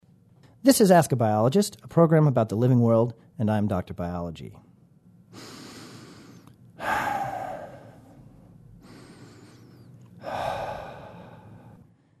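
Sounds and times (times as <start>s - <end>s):
speech: 0.6s - 4.7s
heavy breathing in and out: 5.3s - 12.0s.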